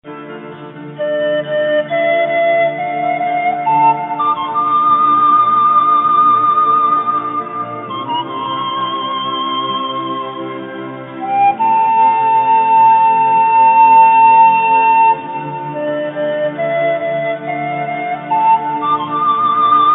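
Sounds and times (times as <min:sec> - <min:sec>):
piccolo flute: 0:00.9 - 0:19.9.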